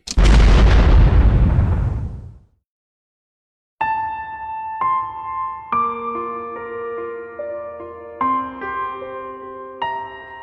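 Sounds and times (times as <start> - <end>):
explosion shaking a building: 0.1 - 2.5
gentle music: 3.8 - 10.4.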